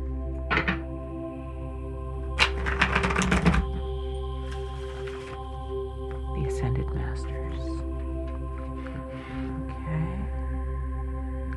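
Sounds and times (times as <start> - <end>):
low steady hum: 0.0 - 11.5
deck of cards being shuffled: 2.4 - 3.8, 4.5 - 5.4.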